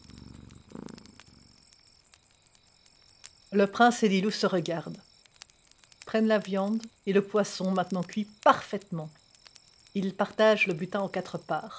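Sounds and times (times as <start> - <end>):
cat purring: 0.0 - 1.6
faint crackly noise: 0.0 - 11.7
speech: 3.5 - 5.1, 6.1 - 9.2, 10.0 - 11.7.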